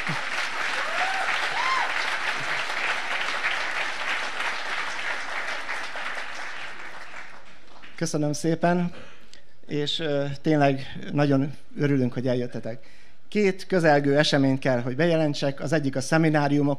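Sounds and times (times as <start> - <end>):
faint cheers and whoops: 0.0 - 2.5
large conference audience applause: 0.0 - 8.0
speech: 8.0 - 9.1, 9.7 - 16.7.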